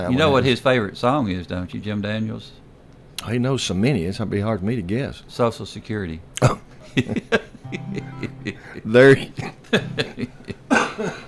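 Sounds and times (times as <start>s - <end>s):
speech: 0.0s - 2.6s, 3.2s - 11.2s
person coughing harshly: 6.4s - 6.7s, 8.7s - 11.2s
laughter: 6.9s - 11.2s.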